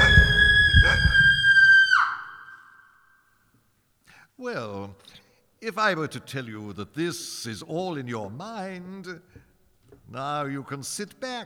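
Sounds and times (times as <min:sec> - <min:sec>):
shrill sustained scream from the head of a rotting corpse: 0:00.0 - 0:03.3
speech: 0:05.6 - 0:09.4, 0:10.1 - 0:11.4.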